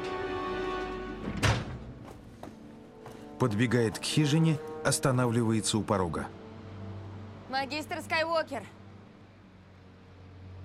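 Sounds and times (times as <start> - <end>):
sustained musical score: 0.0 - 10.6
metal door slamming shut: 1.2 - 2.0
speech: 3.4 - 6.4, 7.5 - 8.8.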